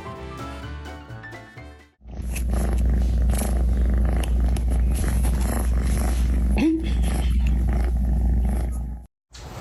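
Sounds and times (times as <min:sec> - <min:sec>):
music: 0:00.0 - 0:02.0
cat purring against the microphone: 0:02.1 - 0:09.1.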